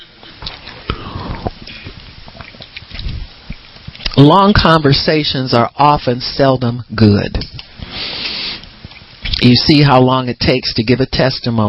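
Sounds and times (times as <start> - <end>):
small wet mouth noises: 0.0 - 4.2, 7.6 - 9.4
person sipping and swallowing water: 0.2 - 4.2
speech: 4.2 - 7.6, 9.4 - 11.6
soft breaths through the nose: 7.8 - 8.8.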